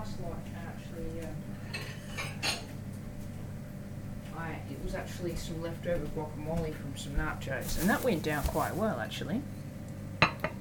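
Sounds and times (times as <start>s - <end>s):
quiet steady hum: 0.0s - 10.5s
crockery and cutlery clinking as a small plate is taken out in a home kitchen: 1.6s - 2.7s
speech: 4.9s - 9.6s.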